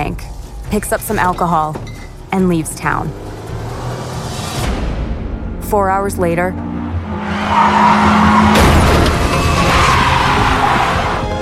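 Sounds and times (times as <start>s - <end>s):
speech: 0.2s - 3.2s, 5.7s - 6.7s, 7.5s - 8.6s
car tires screeching and skidding: 2.2s - 4.8s, 6.6s - 11.3s
car crash of impact: 8.4s - 9.8s.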